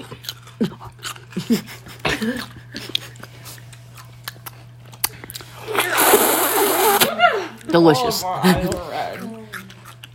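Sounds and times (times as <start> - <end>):
crunchy chewing of a juicy spicy pickle: 0.0 - 7.1, 9.1 - 10.1
speech: 0.2 - 0.8, 1.4 - 2.5, 7.8 - 9.3
laughter: 6.8 - 9.5.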